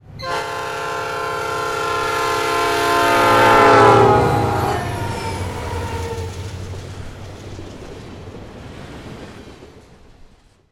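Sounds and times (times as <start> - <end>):
diesel train horn: 0.0 - 6.4.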